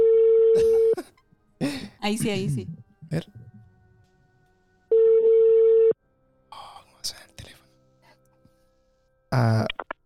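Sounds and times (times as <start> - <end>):
cough-like sound: 0.6 - 1.1
speech: 2.1 - 3.4, 9.4 - 9.8
phone call ringback tones: 4.9 - 6.0.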